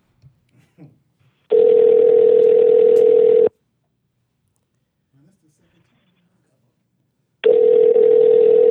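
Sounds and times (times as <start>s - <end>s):
telephone line tone while placing a call: 1.5s - 3.5s, 7.4s - 8.7s.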